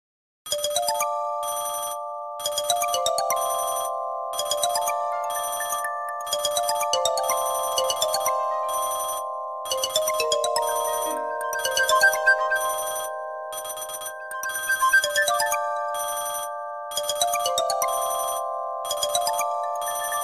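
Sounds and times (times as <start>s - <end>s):
Nokia 3120 phone ringtone: 0.5s - 20.2s.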